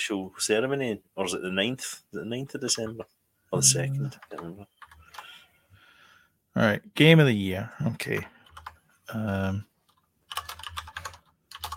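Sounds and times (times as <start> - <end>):
speech: 0.0 - 4.8, 6.6 - 8.4, 9.1 - 9.7
typing on a computer keyboard: 4.2 - 5.3, 8.1 - 8.8, 9.9 - 11.7.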